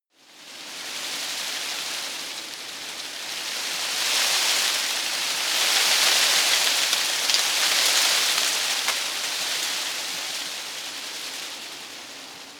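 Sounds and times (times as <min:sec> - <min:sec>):
tree foliage rustling heavily in a garden: 0:00.3 - 0:12.5.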